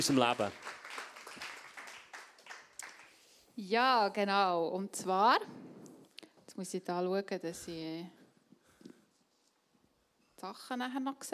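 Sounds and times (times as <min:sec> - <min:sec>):
speech: 0:00.0 - 0:00.8, 0:03.6 - 0:05.7, 0:06.6 - 0:08.2, 0:10.4 - 0:11.3
audience applause: 0:00.0 - 0:03.2.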